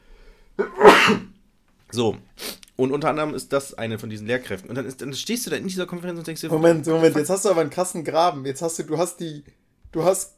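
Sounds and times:
sneeze: 0.6 - 1.4
speech: 1.0 - 1.3, 1.9 - 10.3.

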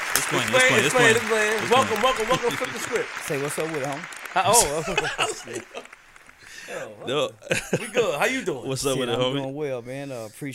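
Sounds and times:
excited audience voices whooping and calling out: 0.0 - 3.1, 4.4 - 5.9
laughter: 0.0 - 3.2, 4.4 - 9.2
audience clapping: 0.0 - 8.6
speech: 0.2 - 6.0, 6.6 - 10.5.

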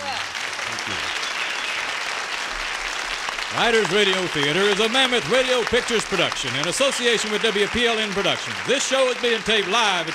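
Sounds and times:
large audience applauding: 0.0 - 10.1
speech: 3.5 - 10.1.

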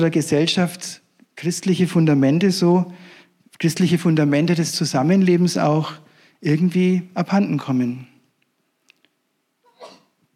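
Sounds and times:
speech: 0.0 - 8.1
sneeze: 9.6 - 10.2.

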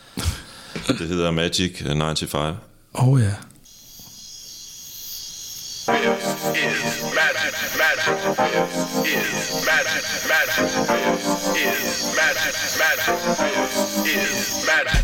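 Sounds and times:
speech: 0.9 - 3.5, 6.5 - 15.0
music track with layered harmonic tones: 5.9 - 14.9.

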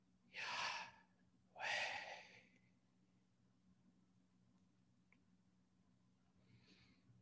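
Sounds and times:
slow airy inhale and exhale breaths: 0.4 - 1.0, 1.6 - 2.5.

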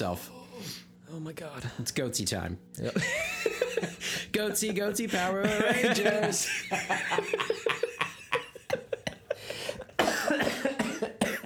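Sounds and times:
speech: 0.0 - 8.0
laughter: 2.8 - 11.2
harsh coughing fit: 5.1 - 11.4.

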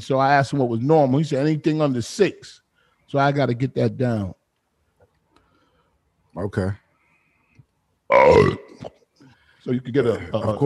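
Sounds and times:
speech: 0.0 - 4.4, 6.4 - 6.8, 8.1 - 9.0, 9.6 - 10.6
loud deep burp with falling pitch and softer gurgle: 8.1 - 9.0.

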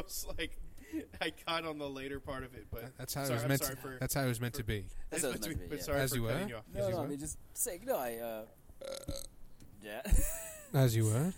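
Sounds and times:
speech: 0.0 - 11.3
gurgly throat sounds: 8.8 - 9.3
loud croaky belch with wobbling pitch: 8.8 - 9.3
shorter guttural burps: 8.8 - 9.4.

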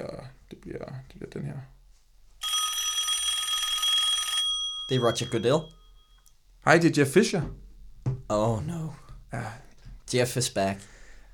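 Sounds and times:
electronic telephone ring: 2.4 - 6.2
speech: 4.9 - 5.8, 6.6 - 7.6, 8.3 - 9.5, 10.1 - 10.9.

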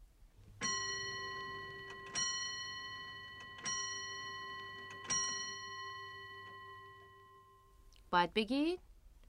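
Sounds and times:
clock chiming with resonant bell strokes: 0.6 - 7.7
speech: 8.1 - 8.9.

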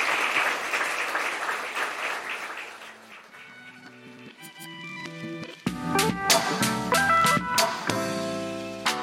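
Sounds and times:
crowd applauding for panellists: 0.0 - 4.1
upbeat instrumental music outro with crisp percussive hits: 3.4 - 9.0.

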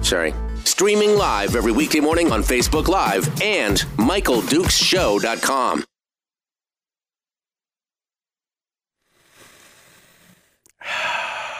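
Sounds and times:
speech: 0.1 - 5.9
deep breath: 9.0 - 11.5.

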